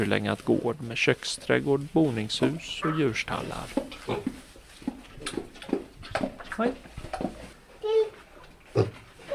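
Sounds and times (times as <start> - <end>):
speech: 0.0 - 4.4, 6.6 - 6.9
pigs grunting and oinking, a large sow and a small piglet, at an old farm museum on Bornholm Denmark: 2.3 - 6.5, 8.6 - 9.2
pig squealing grunt: 2.6 - 3.3.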